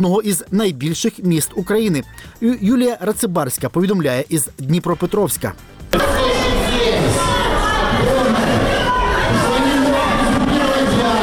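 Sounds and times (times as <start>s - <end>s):
speech: 0.0s - 6.3s
crowd in a large hall chanting angrily: 5.9s - 11.2s.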